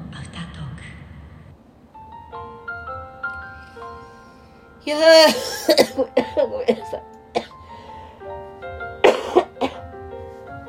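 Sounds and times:
soft music: 0:00.8 - 0:10.6
speech: 0:04.9 - 0:07.1
person coughing after breathing in: 0:05.3 - 0:07.6, 0:09.0 - 0:09.9.

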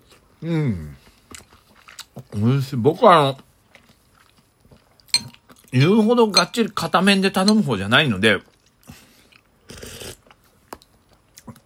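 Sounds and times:
speech: 0:00.4 - 0:01.0, 0:02.3 - 0:03.5, 0:05.7 - 0:08.5
person slurping soy sauce ramen: 0:09.7 - 0:10.2.

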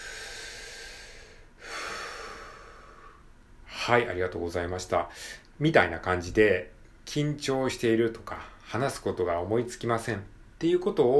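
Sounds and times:
deep breath taken to calm nerves: 0:00.0 - 0:03.3
speech: 0:03.9 - 0:11.1.

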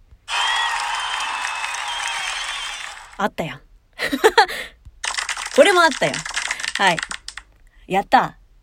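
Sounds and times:
applause of many hands clapping: 0:00.3 - 0:03.2, 0:05.0 - 0:07.2
speech: 0:03.2 - 0:04.8, 0:05.6 - 0:07.2, 0:07.9 - 0:08.4.

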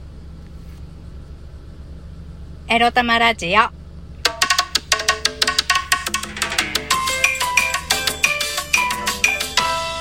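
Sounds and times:
car air conditioning running inside a parked vehicle: 0:00.0 - 0:09.9
speech: 0:02.7 - 0:03.8.

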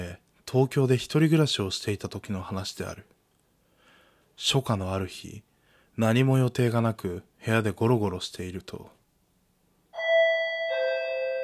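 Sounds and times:
speech: 0:00.5 - 0:03.1, 0:04.4 - 0:09.0
electronic two-tone apartment intercom doorbell chime: 0:10.0 - 0:11.4.

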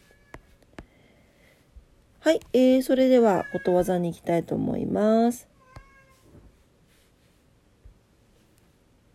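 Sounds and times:
faint shuffling: 0:00.0 - 0:09.1
speech: 0:02.2 - 0:05.5
cat meowing: 0:05.6 - 0:06.3.

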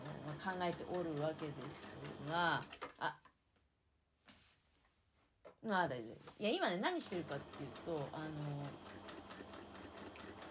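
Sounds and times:
sewing machine zigzag stitching a fabric edge: 0:00.0 - 0:03.0, 0:06.8 - 0:10.5
speech: 0:00.4 - 0:03.3, 0:05.6 - 0:09.0.

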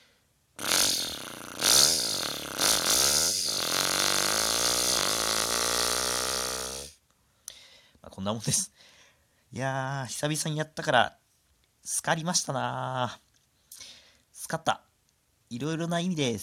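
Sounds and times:
voice imitating a motorcycle engine with a buzzy lip-and-throat rumble: 0:00.6 - 0:07.0
speech: 0:08.2 - 0:08.8, 0:09.5 - 0:11.2, 0:11.8 - 0:13.2, 0:14.5 - 0:14.9, 0:15.5 - 0:16.4.

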